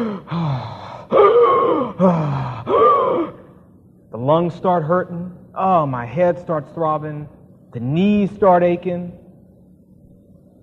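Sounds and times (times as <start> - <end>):
runner gasping with short ragged breaths: 0.0 - 2.9
speech: 4.3 - 9.2.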